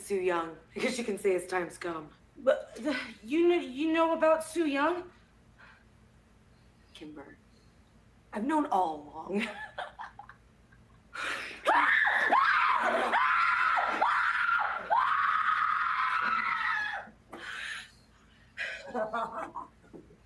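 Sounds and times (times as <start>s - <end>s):
speech: 0.1s - 5.2s, 7.0s - 7.4s, 8.3s - 10.1s
woman screaming in terror: 11.6s - 17.1s.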